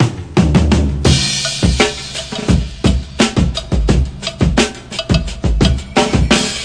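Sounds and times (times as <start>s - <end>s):
classic drum break loop: 0.0s - 6.6s.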